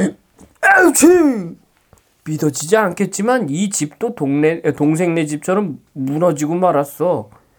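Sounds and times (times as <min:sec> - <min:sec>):
person performing a loud theatrical sneeze: 0:00.0 - 0:01.6
speech: 0:00.0 - 0:01.6, 0:02.3 - 0:07.4.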